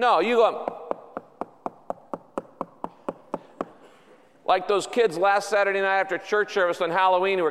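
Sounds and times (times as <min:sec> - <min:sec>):
speech: 0:00.0 - 0:00.8, 0:04.5 - 0:07.4
knocking on a door or hard surface: 0:00.6 - 0:03.8.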